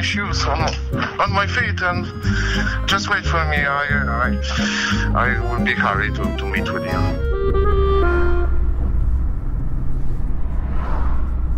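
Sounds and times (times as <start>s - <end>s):
speech: 0.0s - 7.8s
old car engine rumbling while driving toward a town centre: 7.1s - 11.5s.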